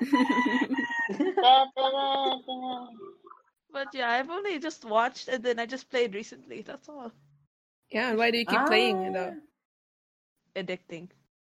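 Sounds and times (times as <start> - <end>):
chickens clucking and squawking: 0.0 - 1.4
laughter: 0.0 - 3.1
speech: 0.2 - 1.7, 3.9 - 7.3, 7.9 - 9.5, 10.6 - 11.2.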